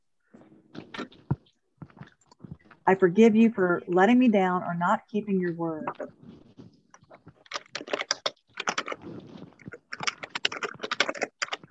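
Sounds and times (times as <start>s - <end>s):
speech: 2.9s - 6.3s
typing on a computer keyboard: 7.4s - 11.6s.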